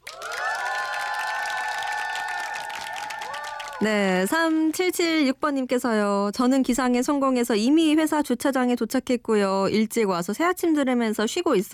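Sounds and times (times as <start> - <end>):
crowd loud steady applause: 0.0 - 4.0
speech: 3.8 - 11.7.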